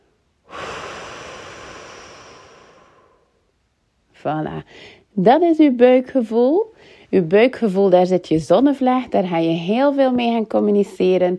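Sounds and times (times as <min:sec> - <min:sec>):
deep airy breathing during a guided relaxation exercise: 0:00.4 - 0:03.5
speech: 0:04.2 - 0:11.3.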